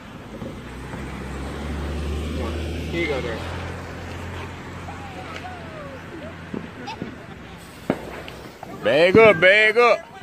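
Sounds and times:
broadband road noise: 0:00.0 - 0:10.2
vehicle engines rumbling on a road: 0:00.0 - 0:10.2
speech: 0:02.9 - 0:03.6, 0:08.8 - 0:10.2.

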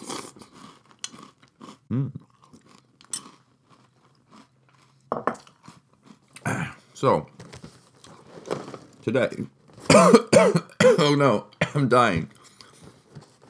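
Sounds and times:
crunching and chewing crisp breakfast cereal from a bowl: 0:00.0 - 0:09.9
speech: 0:01.9 - 0:02.2, 0:07.0 - 0:07.4, 0:09.0 - 0:12.4.

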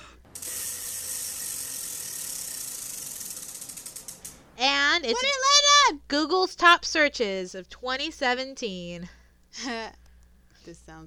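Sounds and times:
spinning prize wheel clicking: 0:00.3 - 0:04.4
speech: 0:04.6 - 0:10.0, 0:10.6 - 0:11.0.

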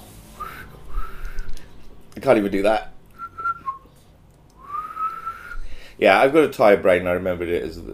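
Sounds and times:
person whistling: 0:00.4 - 0:01.6, 0:03.2 - 0:03.9, 0:04.6 - 0:05.7
speech: 0:02.2 - 0:02.9, 0:06.0 - 0:07.9.

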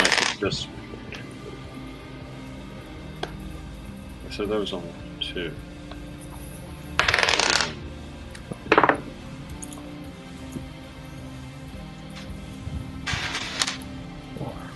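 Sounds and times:
dice rolling during a tabletop game: 0:00.0 - 0:00.4, 0:07.0 - 0:07.8, 0:13.1 - 0:13.8
speech: 0:00.4 - 0:00.9, 0:04.3 - 0:05.7.

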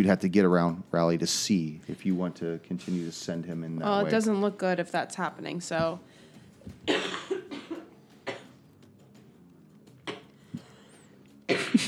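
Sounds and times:
speech: 0:00.0 - 0:07.2
man coughing harshly: 0:06.9 - 0:08.5, 0:11.5 - 0:11.8.

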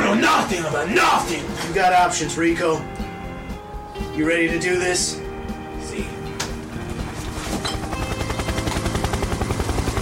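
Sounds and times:
speech: 0:00.4 - 0:03.0, 0:04.2 - 0:05.2
helicopter rotor thumps: 0:06.6 - 0:10.0.

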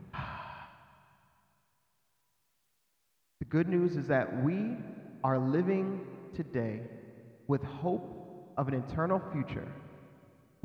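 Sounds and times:
deep breath let out as a long soft sigh: 0:00.0 - 0:01.4
speech: 0:03.5 - 0:09.8.

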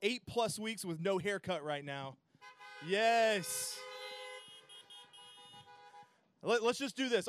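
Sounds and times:
speech: 0:00.0 - 0:02.2, 0:02.8 - 0:03.9, 0:06.4 - 0:07.2
several car horns honking in overlapping blare: 0:02.4 - 0:06.3.

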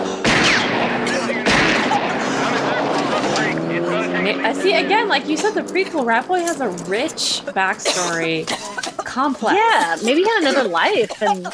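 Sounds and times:
gunfire sound effect: 0:00.1 - 0:03.8
dense rolling noise: 0:00.4 - 0:11.5
laughter: 0:00.8 - 0:11.5
speech: 0:04.4 - 0:11.5.

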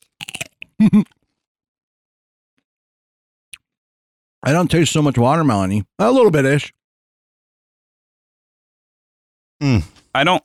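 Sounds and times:
crunchy bites into sugared cucumber: 0:00.0 - 0:01.3
speech: 0:00.8 - 0:01.2, 0:04.5 - 0:06.8, 0:09.6 - 0:10.4.

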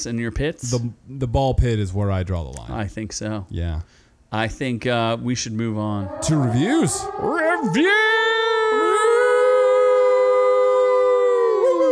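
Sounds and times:
speech: 0:00.0 - 0:08.0
person howling like a wolf: 0:05.9 - 0:11.9.

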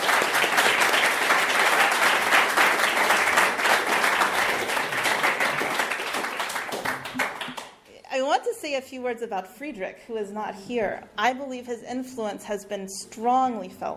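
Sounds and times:
large crowd applauding: 0:00.0 - 0:07.8
speech: 0:08.4 - 0:13.9.

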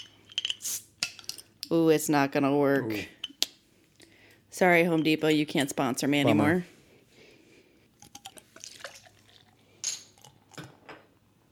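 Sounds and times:
speech: 0:01.7 - 0:03.2, 0:04.6 - 0:06.7
amber beer poured into a glass: 0:08.0 - 0:10.7.

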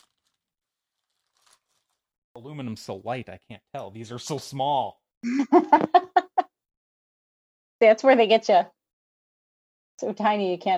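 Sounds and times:
crinkly plastic bag holding a pole being pulled open: 0:00.0 - 0:02.1
speech: 0:02.4 - 0:06.0, 0:07.8 - 0:08.8, 0:10.0 - 0:10.7
laughter: 0:05.2 - 0:06.4.

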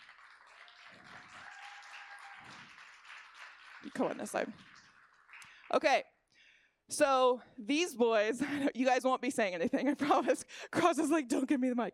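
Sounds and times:
audience applause: 0:00.0 - 0:05.8
speech: 0:03.8 - 0:04.7, 0:05.7 - 0:06.0, 0:06.9 - 0:11.9.

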